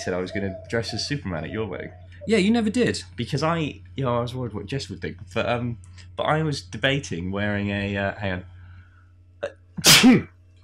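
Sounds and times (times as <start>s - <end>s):
speech: 0.0s - 8.5s, 9.4s - 10.4s
faint steady hum: 0.0s - 10.6s
sneeze: 9.8s - 10.3s.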